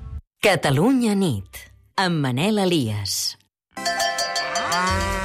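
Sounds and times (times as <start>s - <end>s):
speech: 0.4s - 3.4s
faint rhythmic clinking: 3.8s - 5.2s
dairy cow mooing: 4.2s - 5.2s.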